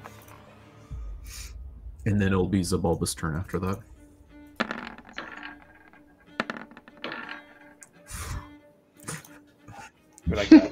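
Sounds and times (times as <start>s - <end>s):
speech: 2.0s - 3.9s, 10.4s - 10.6s
dice clattering across a hard tabletop: 4.6s - 8.0s
laughter: 10.3s - 10.7s.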